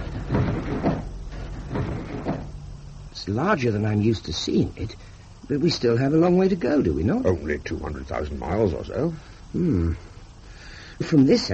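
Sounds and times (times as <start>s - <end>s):
window blinds being opened with knocks and rustling slides: 0.0s - 2.8s
low steady background: 0.0s - 11.5s
speech: 3.2s - 10.1s, 11.0s - 11.5s.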